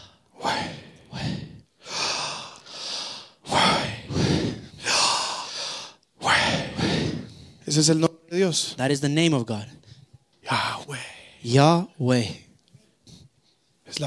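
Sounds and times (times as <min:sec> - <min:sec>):
preacher breathing loudly during a sermon: 0:00.0 - 0:07.6
speech: 0:07.7 - 0:09.8, 0:10.5 - 0:12.4.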